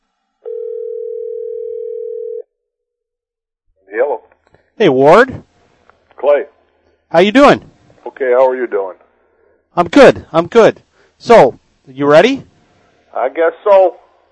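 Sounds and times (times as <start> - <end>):
single steady electronic phone ring tone: 0.4 - 2.5
speech: 4.8 - 5.5, 7.1 - 9.0, 9.8 - 12.5, 13.2 - 14.0.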